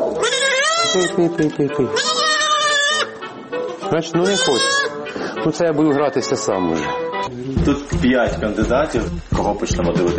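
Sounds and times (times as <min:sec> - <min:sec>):
young goats bleating: 0:00.1 - 0:01.3, 0:01.9 - 0:03.2, 0:04.1 - 0:05.1
speech: 0:00.9 - 0:02.1, 0:03.9 - 0:10.1.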